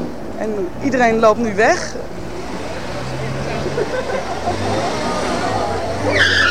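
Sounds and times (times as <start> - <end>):
busy street noise: 0.0 - 6.4
indistinct voices: 0.0 - 6.4
service car engine humming as it pulls away: 0.0 - 6.4
speech: 0.4 - 2.2, 3.8 - 5.2, 6.0 - 6.4
laughter: 3.2 - 6.2
brief high-pitched squeal: 4.8 - 6.4.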